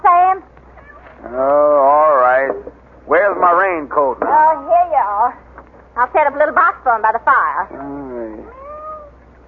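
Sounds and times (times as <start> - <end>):
quiet hiss: 0.0 - 9.4
kitten meowing: 0.8 - 1.4, 8.4 - 9.2
speech: 3.3 - 5.4, 6.0 - 8.6.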